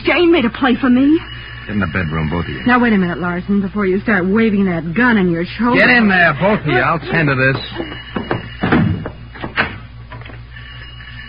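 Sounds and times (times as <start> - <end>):
speech: 0.1 - 8.1
laughter: 5.6 - 8.4
dull thumps on a door: 7.6 - 9.8.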